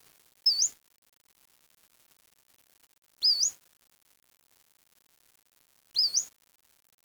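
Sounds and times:
bird calling with thin very high wavering whistles: 0.5s - 0.8s, 3.2s - 3.6s, 6.0s - 6.3s.

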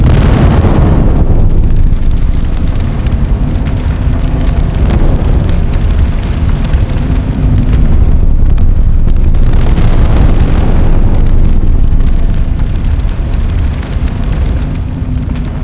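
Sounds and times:
volcano: 0.0s - 15.6s.

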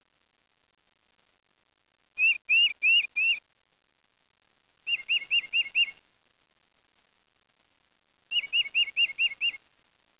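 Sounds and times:
bird whistled song: 2.2s - 3.4s, 4.9s - 6.0s, 8.3s - 9.6s.

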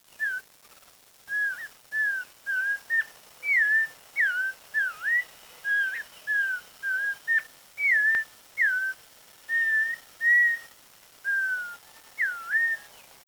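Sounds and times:
bird giving clear slurred whistled notes: 0.2s - 0.4s, 1.3s - 13.0s.

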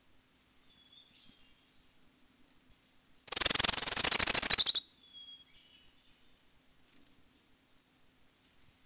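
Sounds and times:
Orange-crowned Warbler trill: 3.3s - 4.8s.

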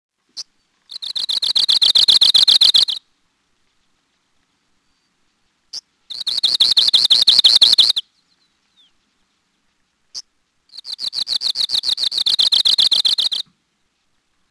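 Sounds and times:
Arctic warbler dry buzzy trills: 0.4s - 3.0s, 5.7s - 8.0s, 10.1s - 13.5s.

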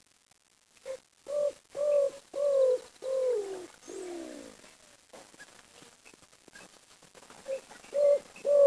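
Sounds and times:
bird cooing: 0.9s - 4.6s, 7.5s - 8.6s.

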